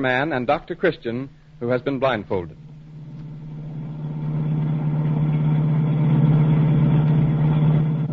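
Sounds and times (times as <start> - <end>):
speech: 0.0 - 2.6
car engine humming while driving through a city: 2.4 - 8.1.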